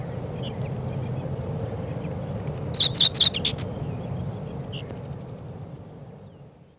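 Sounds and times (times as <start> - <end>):
low steady background hum: 0.0 - 6.7
common whitethroat song in spring: 2.5 - 3.7.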